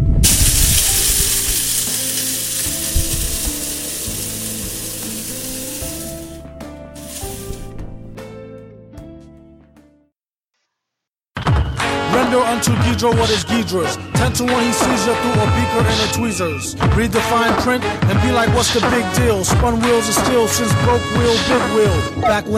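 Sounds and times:
electric grinder grinding coffee beans: 0.2s - 6.4s, 7.0s - 7.7s
speech: 12.4s - 22.5s.

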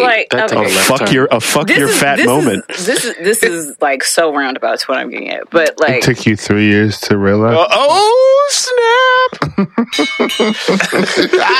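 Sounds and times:
speech: 0.1s - 11.5s
voices and laughter: 0.5s - 3.8s, 7.8s - 11.5s
boxing ring bell clanging: 9.9s - 11.5s.

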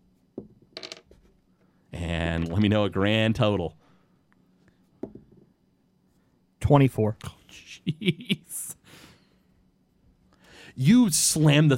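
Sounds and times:
six-sided dice tumbling onto a table: 0.4s - 1.3s
speech: 2.0s - 3.8s, 6.7s - 8.8s, 10.8s - 11.7s.

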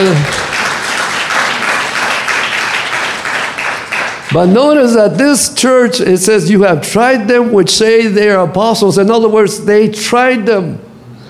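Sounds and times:
speech: 0.0s - 0.4s, 4.3s - 10.8s
audience applauding indoors: 0.0s - 4.6s.

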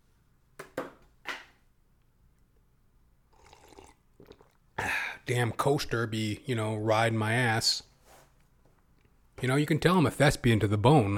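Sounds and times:
sipping and slurping water: 3.3s - 5.7s
speech: 5.3s - 7.9s, 9.4s - 11.1s.

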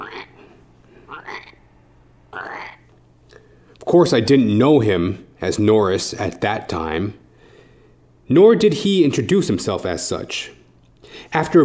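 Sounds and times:
frog croaking: 0.0s - 0.4s, 1.1s - 1.7s, 2.3s - 2.9s
faint low hum: 0.0s - 11.6s
speech: 3.9s - 7.2s, 8.3s - 11.6s.

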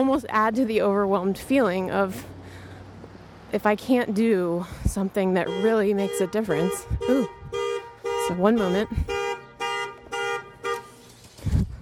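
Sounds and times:
speech: 0.0s - 2.4s, 3.5s - 7.4s, 8.3s - 9.2s
car alarm blaring harmonic horn blasts: 5.4s - 11.0s.

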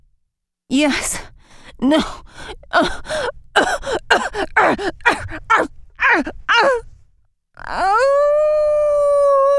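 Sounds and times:
speech: 0.7s - 6.9s, 7.6s - 9.5s
woman gasping vocal bursts: 0.9s - 6.9s
woman howling: 2.8s - 6.8s, 7.6s - 9.5s.

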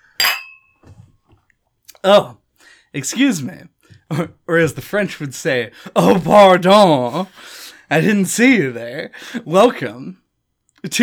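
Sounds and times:
wine glasses of red wine clinking in a toast: 0.0s - 0.9s
speech: 2.0s - 10.2s, 10.8s - 11.0s.

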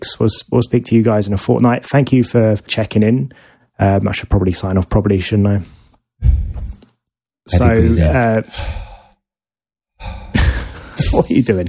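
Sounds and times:
speech: 0.2s - 6.7s, 7.5s - 8.9s, 11.1s - 11.6s
heavy breathing into a microphone: 3.3s - 3.7s, 8.5s - 9.2s, 10.0s - 10.8s.

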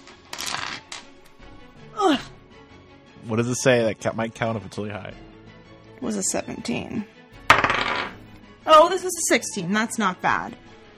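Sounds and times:
dice clattering onto a floor: 0.0s - 1.1s, 7.5s - 8.2s
speech: 3.3s - 5.4s, 6.0s - 7.2s, 9.0s - 10.7s.

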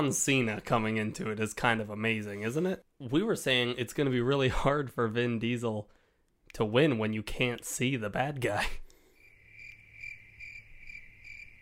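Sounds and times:
speech: 0.0s - 8.8s
cricket chirping: 9.2s - 11.6s.

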